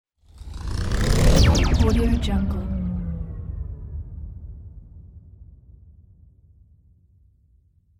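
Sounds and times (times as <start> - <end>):
radio imaging stinger: 0.5 - 3.9.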